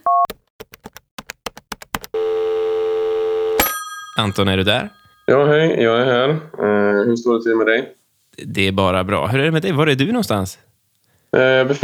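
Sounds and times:
steady buzzing phone ring tone: 0:02.2 - 0:05.6
bright chime as the call connects: 0:03.6 - 0:05.4
speech: 0:04.2 - 0:10.7, 0:11.3 - 0:11.8.

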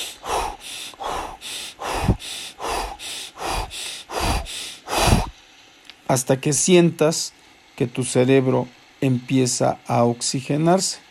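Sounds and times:
rapid hyperventilation breathing as a breathing technique: 0:00.0 - 0:05.4
speech: 0:06.1 - 0:11.0.

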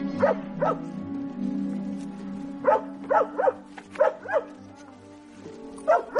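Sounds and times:
dog barking: 0:00.1 - 0:00.9, 0:02.6 - 0:04.8, 0:05.8 - 0:06.1.

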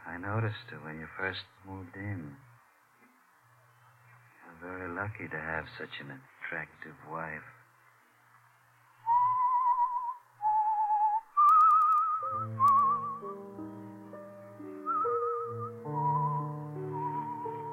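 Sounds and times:
speech: 0:00.2 - 0:02.5, 0:04.6 - 0:07.6
person whistling a vibrato-rich melody: 0:09.0 - 0:13.4, 0:14.8 - 0:17.7
soft sustained instrumental accompaniment: 0:12.2 - 0:17.7.

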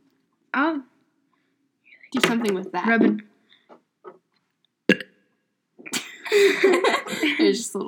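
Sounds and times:
speech: 0:00.5 - 0:00.9, 0:02.1 - 0:03.3, 0:06.3 - 0:07.8
rough gulping sound: 0:04.9 - 0:05.1
short throaty bursts: 0:04.9 - 0:05.1
sharp burp: 0:04.9 - 0:05.2
laughter: 0:06.0 - 0:07.6.

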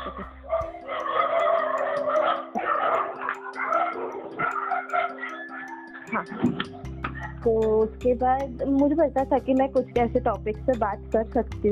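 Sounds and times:
several dogs barking and yelping: 0:00.0 - 0:07.4
speech: 0:07.4 - 0:11.7.

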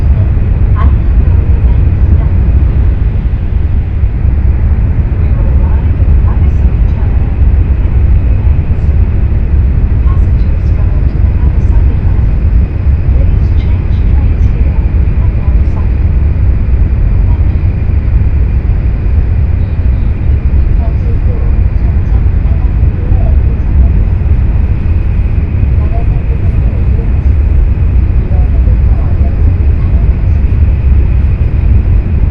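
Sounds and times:
faint murmured voices: 0:00.0 - 0:17.8, 0:20.2 - 0:31.7
heavy low rumble inside a high-speed train carriage: 0:00.0 - 0:32.2.

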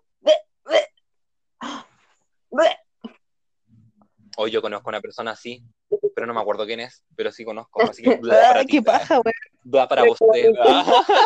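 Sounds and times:
person fake retching and gagging: 0:00.2 - 0:01.0
speech: 0:04.4 - 0:11.2
laughter: 0:10.6 - 0:11.2.

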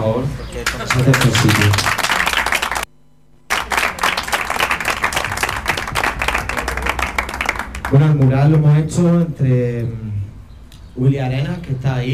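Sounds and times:
speech: 0:00.0 - 0:02.0, 0:07.9 - 0:10.3, 0:11.0 - 0:12.1
crowd applauding: 0:00.6 - 0:02.9, 0:03.5 - 0:08.8.

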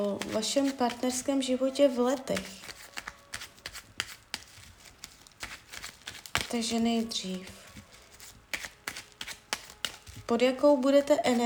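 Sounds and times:
speech: 0:00.0 - 0:02.7, 0:06.5 - 0:07.6, 0:10.3 - 0:11.4
tarot cards shuffling: 0:00.0 - 0:11.4.

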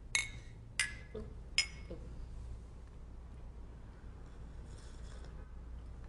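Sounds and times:
low steady hum: 0:00.0 - 0:06.0
mugs of hot tea clinking together in a toast: 0:00.1 - 0:01.9.

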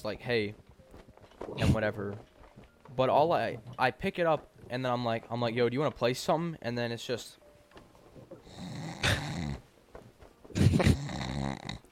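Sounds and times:
speech: 0:00.0 - 0:00.6, 0:01.5 - 0:02.3, 0:02.9 - 0:07.4
voice imitating loud rasping snoring: 0:08.4 - 0:09.6, 0:10.6 - 0:11.9.

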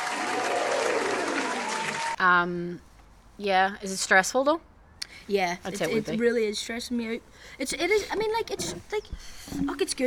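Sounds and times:
crowd applause: 0:00.0 - 0:02.2
speech: 0:02.2 - 0:10.0.

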